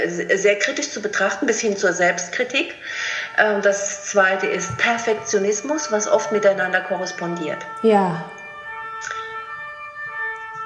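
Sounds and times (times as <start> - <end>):
speech: 0.0 - 8.4
emergency vehicle siren wailing: 3.2 - 10.6.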